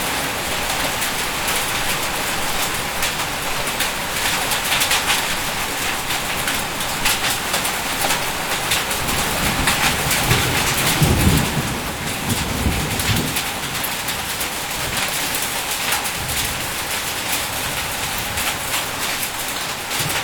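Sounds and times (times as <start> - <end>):
heavy rain and hail on a roof in Sydney Australia: 0.0 - 20.2
low rumble of thunder: 9.0 - 15.2.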